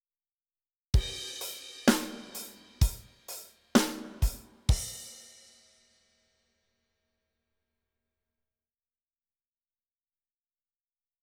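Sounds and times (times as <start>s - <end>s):
drums playing in training: 1.0s - 5.6s.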